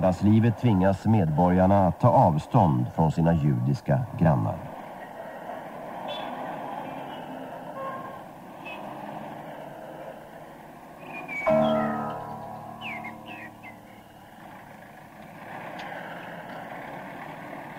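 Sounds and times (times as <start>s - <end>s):
speech: 0.0s - 4.7s
train rumbling and clattering on rails: 0.0s - 17.7s
sharp metallic squeal or whistle: 11.2s - 15.1s.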